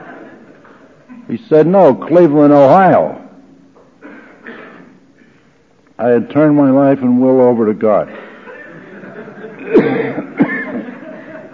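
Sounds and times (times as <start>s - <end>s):
speech: 1.3s - 3.2s, 6.0s - 8.3s
sharp coughs: 4.0s - 5.5s, 9.6s - 10.8s
laughter: 8.2s - 11.5s.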